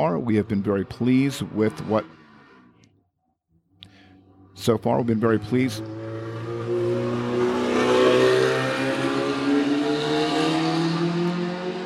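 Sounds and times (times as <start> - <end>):
speech: 0.2 - 2.2, 4.6 - 6.0
car or motorcycle engine revving past: 0.3 - 2.9, 5.3 - 11.8.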